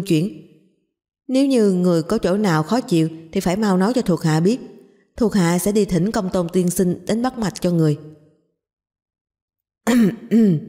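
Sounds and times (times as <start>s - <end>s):
speech: 0.0s - 0.4s, 1.3s - 8.2s, 9.8s - 10.6s
man dry coughing to clear his throat: 9.9s - 10.6s.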